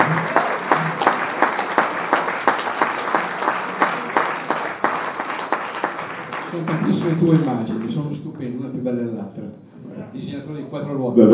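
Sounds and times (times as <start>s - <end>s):
crowd clapping: 0.0s - 8.2s
speech: 7.2s - 7.8s, 10.8s - 11.3s.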